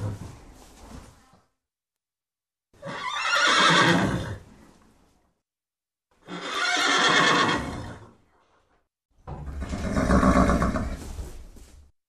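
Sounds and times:
horse neighing with a long quavering whinny: 2.8 - 4.4, 6.2 - 8.1, 9.5 - 11.0.

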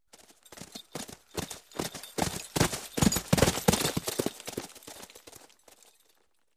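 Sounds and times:
horse galloping on the ground: 0.0 - 6.2.

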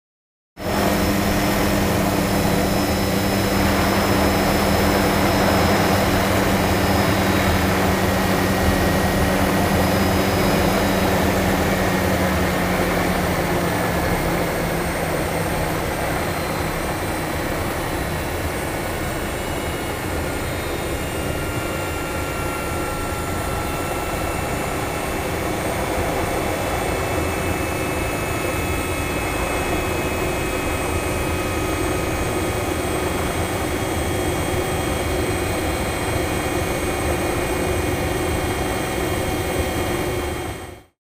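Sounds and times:
helicopter landing and turning off: 0.6 - 40.9.

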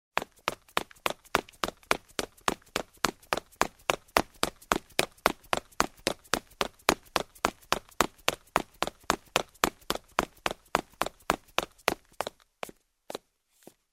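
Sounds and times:
running in shoes on a marble floor: 0.2 - 13.8.

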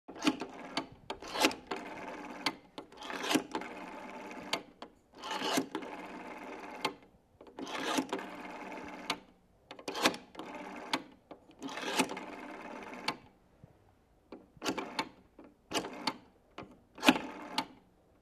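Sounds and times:
dialing a number on a rotary telephone: 0.1 - 9.2, 9.8 - 13.3, 14.6 - 16.2, 17.0 - 17.8.

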